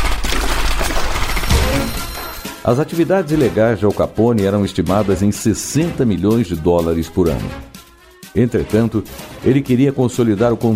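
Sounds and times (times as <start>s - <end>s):
Thompson submachine gun burst in a gangland shooting: 0.0s - 2.5s
speech: 2.7s - 7.7s, 8.3s - 10.7s.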